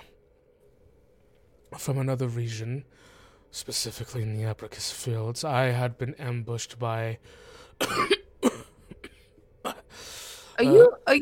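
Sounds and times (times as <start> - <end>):
speech: 1.8 - 8.2, 10.6 - 11.2
harsh throaty coughs: 7.8 - 9.9.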